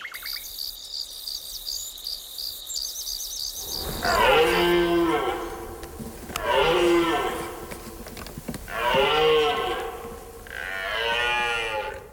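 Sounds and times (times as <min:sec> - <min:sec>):
deer bellowing: 0:03.6 - 0:12.1.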